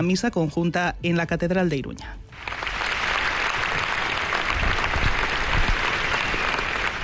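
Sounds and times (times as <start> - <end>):
speech: 0.0 - 2.6
large crowd applauding at a funeral farewell: 2.3 - 7.0.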